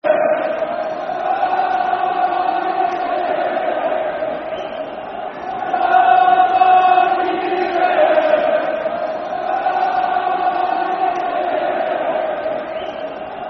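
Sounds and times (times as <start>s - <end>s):
football crowd chanting: 0.0s - 13.4s.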